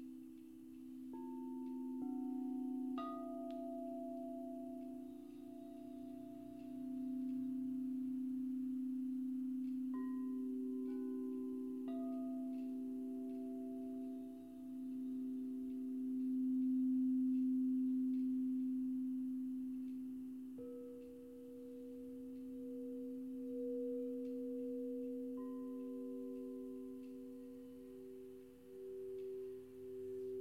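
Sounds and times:
crystal singing bowls in deep low sustained drone: 0:00.0 - 0:30.4.

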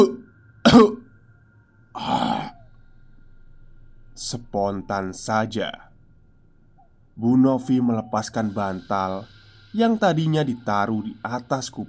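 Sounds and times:
dying old man's raspy cough: 0:00.7 - 0:01.0
speech: 0:00.7 - 0:01.0, 0:04.6 - 0:05.9, 0:07.2 - 0:11.8.

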